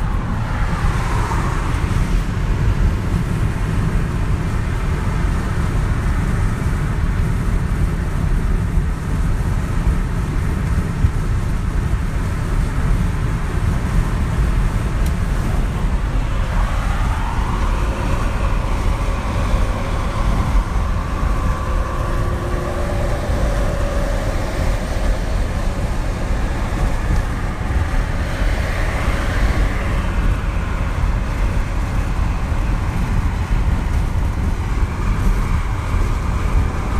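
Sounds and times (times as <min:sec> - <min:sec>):
vehicle passing: 0:00.0 - 0:03.8, 0:14.1 - 0:36.9
car engine and road noise driving down the freeway: 0:00.0 - 0:36.9
faint wind: 0:00.0 - 0:36.9
tire hiss: 0:00.0 - 0:36.9.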